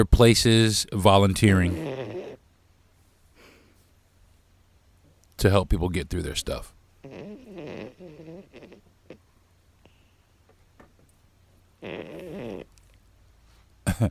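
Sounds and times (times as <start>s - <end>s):
speech: 0.0s - 2.0s, 5.4s - 8.0s
small female dog snoring: 1.7s - 2.4s, 7.0s - 9.2s, 11.8s - 12.8s.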